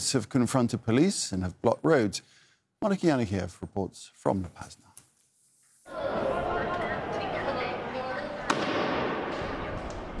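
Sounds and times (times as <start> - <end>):
speech: 0.0 - 4.9
indistinct voices and chatter: 5.9 - 10.1
firecracker bang lit by street protesters: 8.5 - 10.1.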